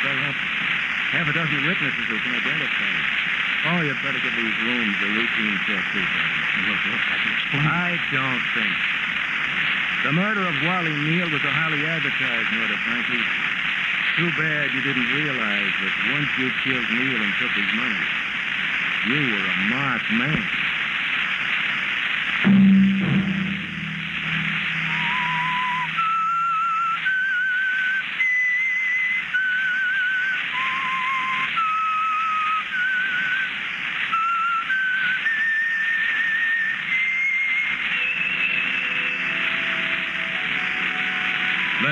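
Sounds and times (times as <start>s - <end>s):
steady broadband hiss: 0.0s - 41.8s
speech: 1.1s - 9.0s, 9.6s - 13.4s, 14.2s - 18.3s, 19.0s - 20.6s
brief low thump: 22.5s - 24.7s
whistled melody: 24.4s - 33.5s, 34.1s - 41.8s.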